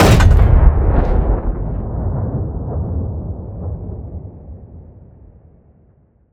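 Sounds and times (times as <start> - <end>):
tank artillery cannon shot in a video game: 0.0 - 2.9.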